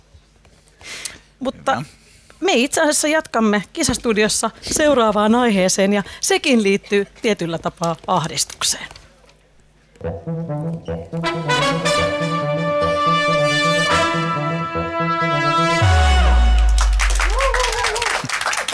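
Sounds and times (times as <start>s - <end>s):
speech: 1.4s - 9.0s, 10.0s - 12.6s
sustained musical chord: 10.0s - 17.3s
audience applause and cheering: 15.9s - 18.7s.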